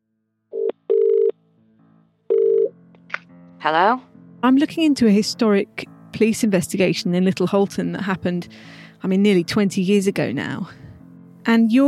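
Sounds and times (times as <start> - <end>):
outgoing call's ringback tone: 0.6 - 1.3, 2.3 - 2.7
speech: 3.6 - 10.8, 11.4 - 11.8.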